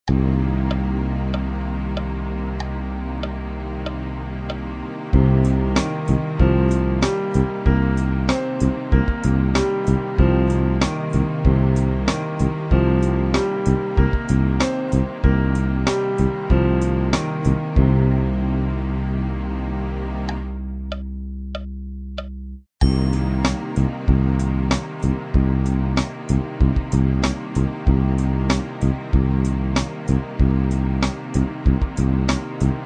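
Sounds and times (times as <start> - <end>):
minor pentatonic melody: 0.1 - 19.1, 20.3 - 32.8.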